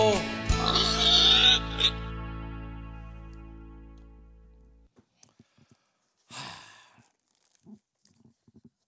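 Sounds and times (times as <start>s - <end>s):
person imitating a pig's oinking squeal: 0.6s - 2.1s.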